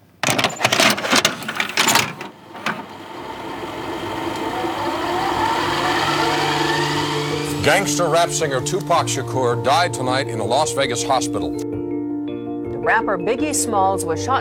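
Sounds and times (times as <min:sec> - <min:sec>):
cassette pushed into a deck with plastic clunks and clicks: 0:00.0 - 0:03.0
cassette deck motor hum: 0:00.7 - 0:07.8
speech: 0:07.7 - 0:11.8, 0:12.9 - 0:14.3.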